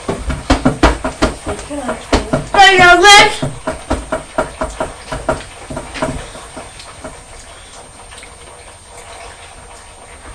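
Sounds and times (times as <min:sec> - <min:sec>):
foot kicking a chair: 0:00.0 - 0:07.2
speech: 0:01.6 - 0:03.5.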